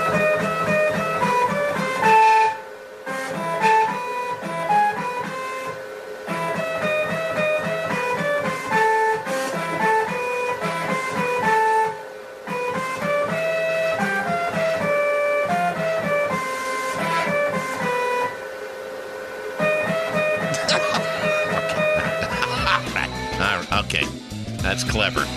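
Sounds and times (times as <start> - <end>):
3D printer stepper motors playing a classical melody: 0.0 - 25.3
laughter: 20.6 - 23.9
speech: 25.0 - 25.3.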